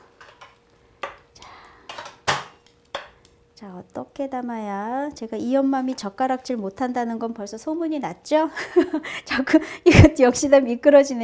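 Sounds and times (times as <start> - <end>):
chopsticks tapping a plate while plating braised radish: 1.9 - 3.2
speech: 3.6 - 11.2.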